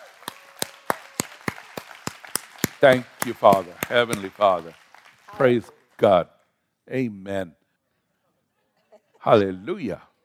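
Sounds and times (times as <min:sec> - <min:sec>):
church congregation clapping: 0:00.0 - 0:06.2
speech: 0:02.8 - 0:07.6, 0:09.2 - 0:10.1.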